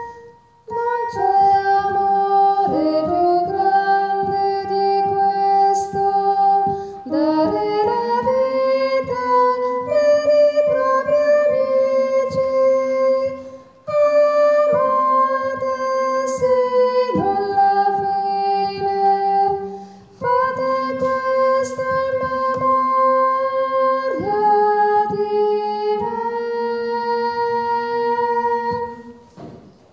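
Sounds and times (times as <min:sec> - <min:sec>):
tenors singing: 0:00.7 - 0:29.4.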